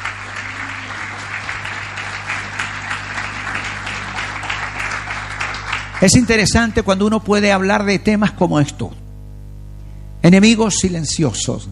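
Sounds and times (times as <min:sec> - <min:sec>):
audience applauding in a large room: 0:00.0 - 0:06.7
low steady hum: 0:00.0 - 0:11.7
speech: 0:06.0 - 0:09.0, 0:10.2 - 0:11.7.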